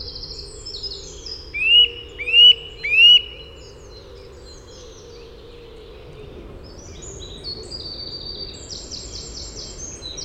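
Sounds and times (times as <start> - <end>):
Eurasian nuthatch Sitta europaea whistled calls: 1.6 - 3.5.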